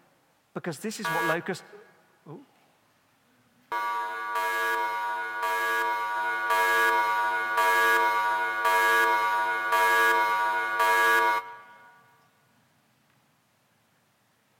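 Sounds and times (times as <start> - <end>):
speech: 0.6 - 2.5
loud harsh buzzing alarm: 1.1 - 1.5, 3.7 - 12.1.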